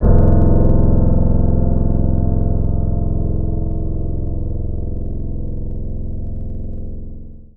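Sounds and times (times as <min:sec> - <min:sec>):
acoustic piano: 0:00.0 - 0:07.3.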